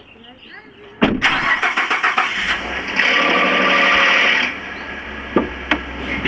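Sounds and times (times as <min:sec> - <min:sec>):
F150 truck noise: 0:00.0 - 0:06.2
F150 truck noise on start: 0:01.0 - 0:06.2.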